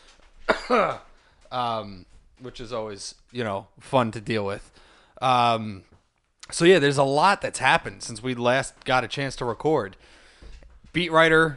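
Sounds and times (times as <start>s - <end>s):
person coughing: 0.5s - 1.1s
speech: 0.7s - 10.2s, 10.9s - 11.5s.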